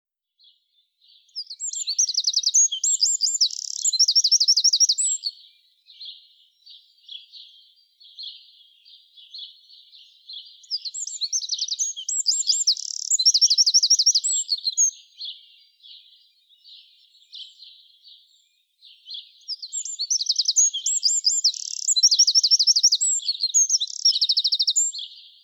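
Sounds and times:
Eurasian wren singing, Troglodytes troglodytes: 0.4 - 25.4
quiet bird twittering: 0.4 - 25.4.

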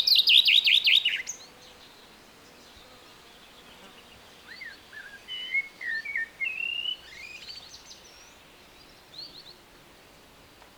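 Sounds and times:
common chaffinch Fringilla coelebs song: 0.0 - 2.0, 4.4 - 9.5.

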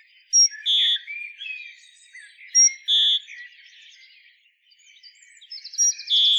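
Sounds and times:
Great tit Parus major calls with high note and harsh buzzy segments: 0.0 - 1.7, 2.5 - 3.6, 5.5 - 6.3.

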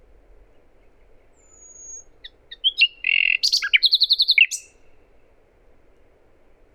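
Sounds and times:
common nightingale Luscinia megarhynchos song with whistle chirps and buzzy trill: 1.4 - 4.8.

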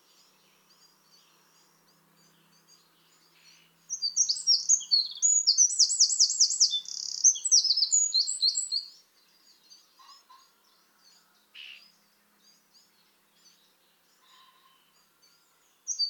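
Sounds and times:
Eurasian wren Troglodytes troglodytes song with shrill notes and trills: 0.0 - 16.0.

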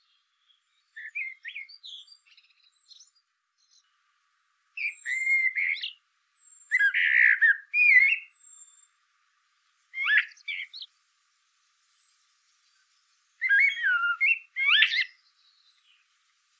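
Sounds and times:
Eurasian blackbird Turdus merula singing: 0.0 - 3.9, 4.8 - 9.0, 10.0 - 10.9, 13.4 - 16.1
faint thin whistle: 1.0 - 2.2, 4.8 - 8.3, 13.4 - 15.7.

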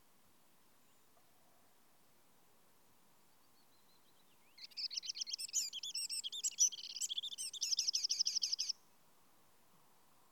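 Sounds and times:
Eurasian wren Troglodytes troglodytes song with high trills and twittering: 3.8 - 8.8.

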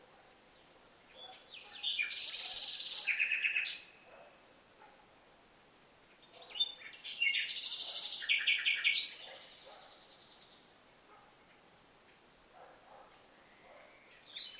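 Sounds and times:
Luscinia megarhynchos harsh high rattling trills: 1.1 - 4.0, 6.3 - 9.8.

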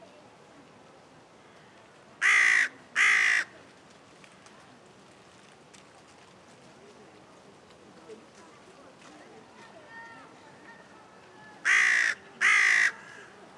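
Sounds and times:
faint background sounds: 0.0 - 13.5
carrion crow Corvus corone giving harsh caws: 2.2 - 3.5, 11.6 - 13.4.

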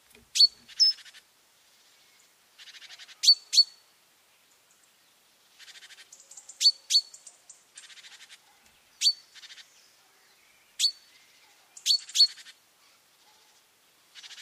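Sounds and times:
great tit ringing calls, Parus major: 0.3 - 1.2, 2.6 - 3.8, 5.6 - 8.4, 10.7 - 12.6.

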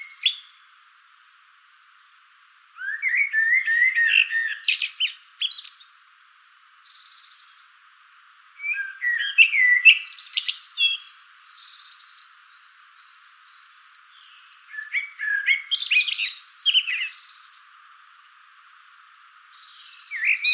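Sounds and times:
common blackbird Turdus merula singing: 0.0 - 0.6, 2.8 - 5.9, 6.9 - 7.7, 8.6 - 18.8, 19.5 - 20.5.

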